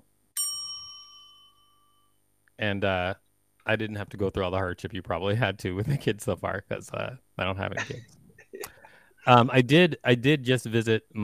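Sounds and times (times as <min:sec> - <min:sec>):
bell ding: 0:00.4 - 0:02.2
speech: 0:02.6 - 0:08.2, 0:09.2 - 0:11.2.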